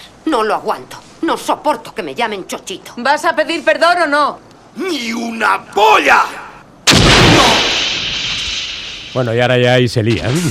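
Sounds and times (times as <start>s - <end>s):
speech: 0.3s - 6.4s, 9.2s - 10.4s
truck exploding in a film: 6.9s - 9.2s.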